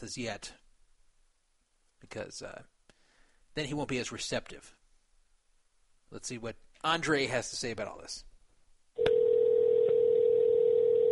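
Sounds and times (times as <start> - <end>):
speech: 0.0 - 0.6, 2.1 - 2.7, 3.6 - 4.8, 6.1 - 8.3
telephone dial tone: 9.0 - 11.1.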